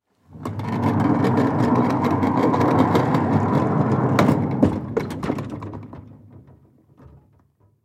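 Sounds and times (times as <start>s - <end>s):
cart rolling by on cement: 0.3s - 6.4s.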